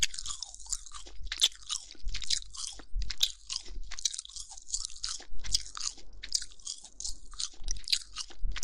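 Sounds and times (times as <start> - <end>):
wet chewing of meat: 0.0 - 8.6.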